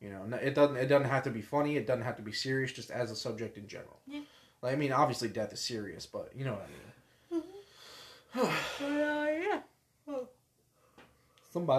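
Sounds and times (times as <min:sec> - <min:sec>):
speech: 0:00.0 - 0:06.9, 0:08.3 - 0:10.3, 0:11.6 - 0:11.7
person giving a short vocal sigh: 0:07.3 - 0:09.4
person yawning with a voiced groan: 0:08.3 - 0:09.4.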